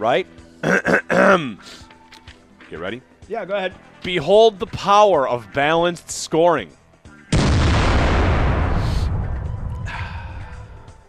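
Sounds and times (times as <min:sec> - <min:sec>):
speech: 0:00.0 - 0:01.9, 0:02.7 - 0:06.8
cannon blast: 0:07.3 - 0:09.9.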